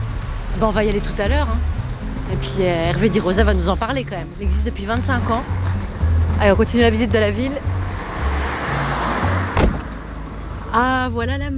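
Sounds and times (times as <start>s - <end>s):
car road and engine rumble on a seafront corniche road in Sète: 0.0s - 11.5s
speech: 0.6s - 5.8s, 6.4s - 7.7s, 10.8s - 11.5s
brief thump: 9.5s - 10.0s.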